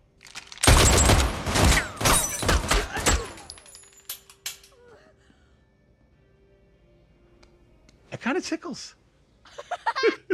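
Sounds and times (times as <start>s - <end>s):
close-range gunfire: 0.6s - 3.4s
speech: 8.4s - 9.0s
laughter: 9.5s - 10.3s.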